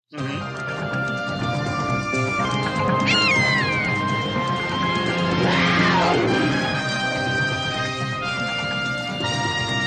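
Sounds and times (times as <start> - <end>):
TV theme tune: 0.4 - 9.2
sweeping yowl-like cries: 3.0 - 4.1.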